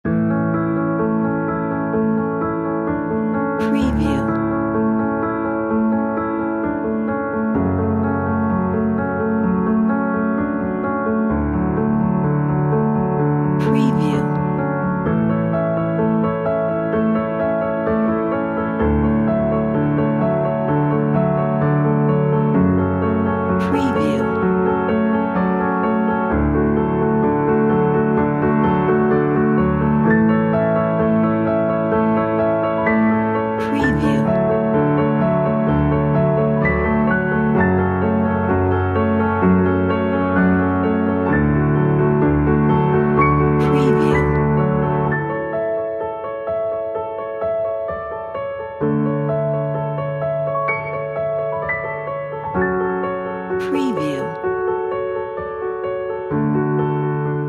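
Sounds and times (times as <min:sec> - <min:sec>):
inspirational piano music: 0:00.0 - 0:57.4.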